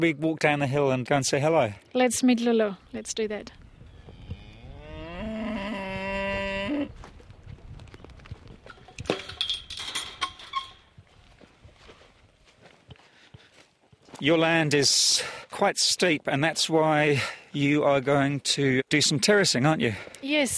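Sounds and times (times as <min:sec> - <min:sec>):
speech: 0:00.0 - 0:03.6, 0:14.2 - 0:20.5
cow mooing on a hillside farm: 0:03.9 - 0:07.0.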